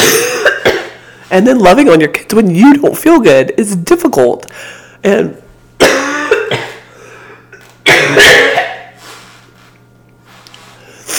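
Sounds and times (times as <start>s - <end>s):
unwell woman coughing: 0.0s - 1.0s, 5.8s - 9.0s
speech: 1.3s - 5.4s.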